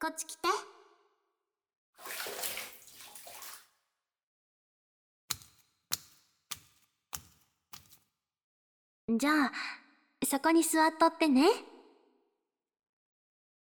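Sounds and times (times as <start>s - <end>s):
speech: 0.0s - 0.7s, 9.1s - 11.7s
water sloshing and swishing in a bath: 2.0s - 3.7s.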